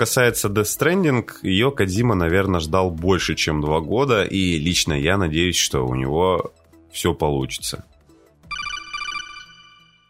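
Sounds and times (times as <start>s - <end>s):
speech: 0.0s - 7.9s
codec call ringtone for an incoming call: 8.5s - 10.0s.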